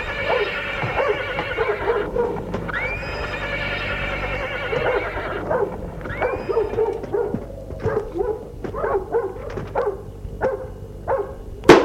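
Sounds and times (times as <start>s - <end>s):
horse whinnying at a castle: 0.0s - 7.1s
horse hooves shuffling as a rider dismounts: 0.0s - 11.6s
dog barking: 0.2s - 3.4s, 4.7s - 11.5s.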